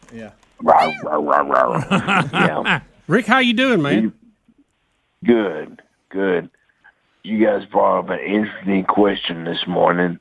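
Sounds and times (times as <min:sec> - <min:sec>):
speech: 0:00.1 - 0:04.2, 0:05.2 - 0:06.6, 0:07.2 - 0:10.1
person imitating a bulldog growl: 0:00.6 - 0:01.9
laughter: 0:01.4 - 0:03.0.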